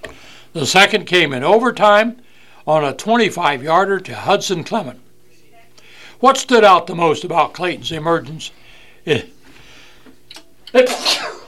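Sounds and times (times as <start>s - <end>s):
speech: 0.6s - 5.0s, 6.2s - 9.3s, 10.7s - 11.4s
sneeze: 10.8s - 11.4s.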